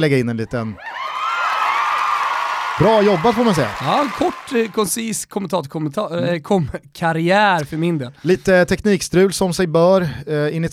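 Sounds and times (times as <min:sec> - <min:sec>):
speech: 0:00.0 - 0:01.0, 0:02.8 - 0:10.7
whoops and high shouts: 0:00.8 - 0:04.5
crowd cheering: 0:00.8 - 0:05.0.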